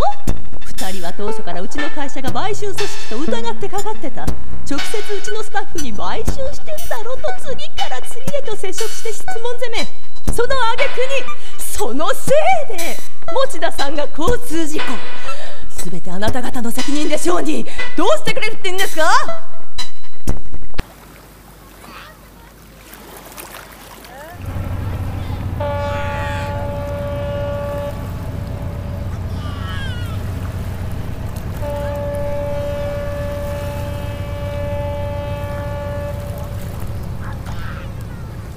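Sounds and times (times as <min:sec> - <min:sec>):
speech: 0:01.2 - 0:19.5
low rumble of ship engine: 0:20.8 - 0:38.5
open water: 0:20.8 - 0:38.5
ship's steam whistle blasts: 0:24.4 - 0:37.2.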